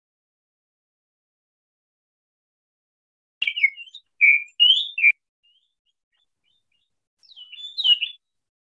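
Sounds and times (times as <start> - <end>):
bird chirping and singing: 3.4 - 8.3.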